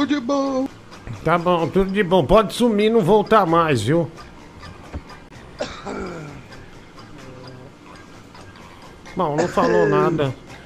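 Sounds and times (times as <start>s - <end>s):
speech: 0.0s - 4.3s, 9.2s - 10.4s
person coughing close to the microphone: 5.6s - 6.5s, 9.4s - 10.2s.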